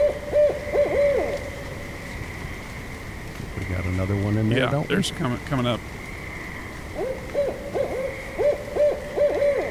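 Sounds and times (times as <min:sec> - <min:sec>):
barred owl hooting: 0:00.0 - 0:01.9, 0:06.3 - 0:09.7
speech: 0:04.6 - 0:06.0.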